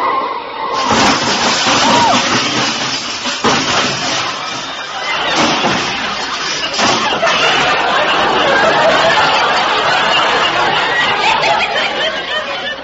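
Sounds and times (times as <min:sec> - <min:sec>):
car skidding and crashing into a big black touring car: 0:00.7 - 0:10.3
laughter: 0:00.8 - 0:12.8.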